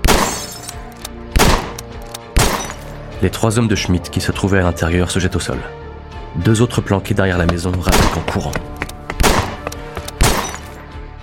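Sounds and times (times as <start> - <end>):
rifle shots fired through the door and windows of a house: 0.0 - 0.7, 1.4 - 2.8, 7.9 - 8.3, 9.2 - 10.8
speech: 3.2 - 5.8, 6.4 - 8.7.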